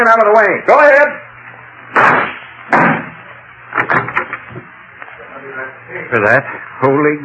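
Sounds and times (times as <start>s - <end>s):
speech: 0.0s - 1.2s, 1.9s - 3.0s, 5.8s - 7.2s
gunshots blasting a closet door lock: 1.9s - 3.2s.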